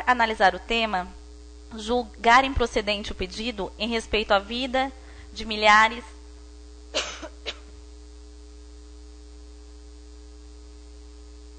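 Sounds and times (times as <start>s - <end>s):
fan humming: 0.0s - 11.5s
speech: 0.1s - 6.2s
person with allergies clearing throat: 7.0s - 7.7s
person with allergies coughing: 7.0s - 7.7s.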